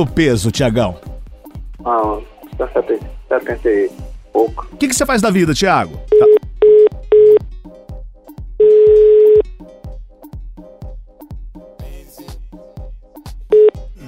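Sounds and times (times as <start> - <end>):
speech: 0.0 - 1.1, 1.8 - 6.2
telephone busy tone after call dropped: 6.2 - 7.4, 8.6 - 9.4.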